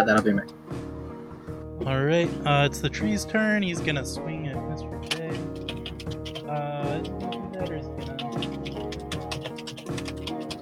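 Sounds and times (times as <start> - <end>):
speech: 0.0 - 0.6, 1.8 - 5.4
typing on a computer keyboard: 5.0 - 10.6.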